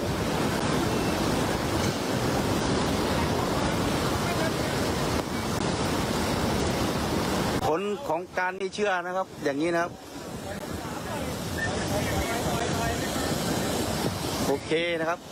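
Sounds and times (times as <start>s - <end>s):
fast-flowing floodwater roaring: 0.0s - 15.2s
speech: 8.2s - 10.1s, 14.5s - 15.2s.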